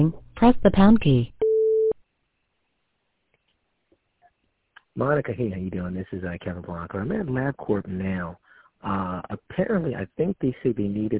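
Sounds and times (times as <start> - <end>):
speech: 0.0 - 1.4, 5.0 - 11.1
short mid-pitched beep from a voicemail system: 1.4 - 2.0.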